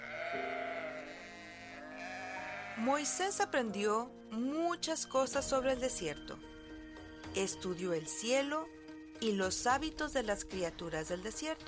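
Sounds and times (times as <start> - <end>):
sheep from a herd of sheep and goats in the desert bleating: 0.0 - 3.6
speech: 2.8 - 6.6, 7.4 - 11.6.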